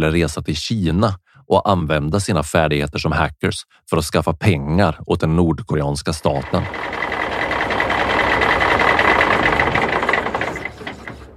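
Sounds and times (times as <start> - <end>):
speech: 0.0 - 7.0
rapid mechanical chatter: 6.2 - 11.3
bus engine rumbling as the bus stops at a border checkpoint: 6.3 - 11.3.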